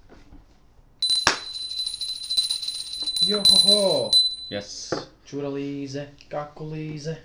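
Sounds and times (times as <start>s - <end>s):
small hand bell ringing: 1.0s - 4.6s
speech: 3.2s - 7.2s.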